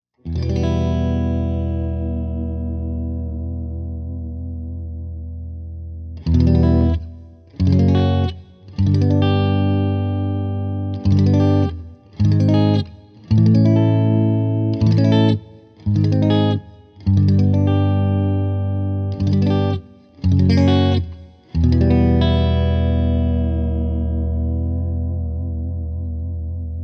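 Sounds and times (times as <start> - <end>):
electric guitar clean tone on middle pickups: 0.2 - 26.8.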